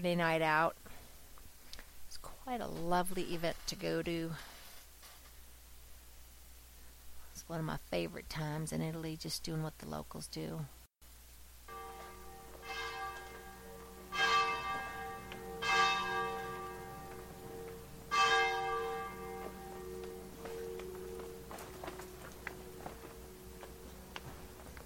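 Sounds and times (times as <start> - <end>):
speech: 0.0 - 0.8, 2.4 - 4.5, 7.4 - 10.8
church bells ringing in Frascati, Italy: 11.7 - 24.8.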